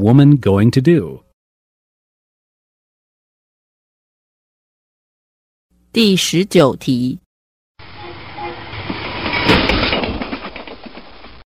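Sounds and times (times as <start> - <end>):
speech: 0.0 - 1.2, 6.0 - 7.2
northbound train rumbling along the rails: 7.8 - 11.4.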